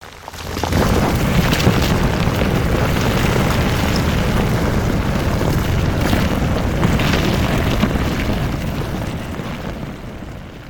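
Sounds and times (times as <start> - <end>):
cliff collapsing: 0.2 - 10.6.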